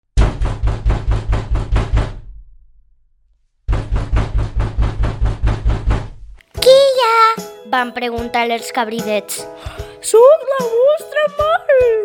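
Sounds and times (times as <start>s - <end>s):
rapid loud knocking on a door: 0.2s - 2.3s, 3.7s - 6.3s
speech: 7.7s - 12.0s.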